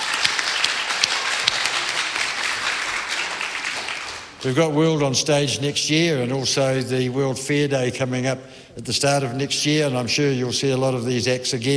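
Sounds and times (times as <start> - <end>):
crowd applauding: 0.0 - 4.7
speech: 4.4 - 11.7.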